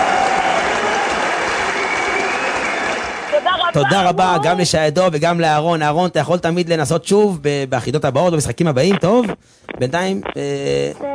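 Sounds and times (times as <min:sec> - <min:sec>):
family clapping and applauding for a quiz win: 0:00.0 - 0:04.6
speech: 0:03.7 - 0:11.1.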